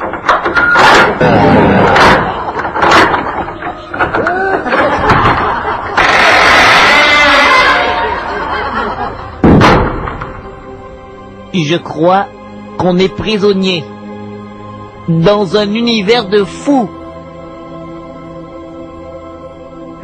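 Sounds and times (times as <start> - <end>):
door slamming shut: 0.0 - 7.3, 9.4 - 10.5
laughter: 1.5 - 2.8, 3.7 - 9.4
thuds and knocks: 1.8 - 5.6, 9.4 - 10.5
speech: 11.6 - 14.0, 15.1 - 17.0.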